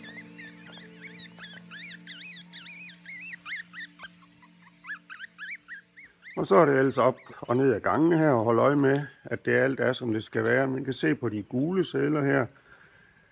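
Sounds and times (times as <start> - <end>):
newborn mink kits squeaking during an evening check of mink females: 0.0 - 9.4
speech: 6.4 - 12.6.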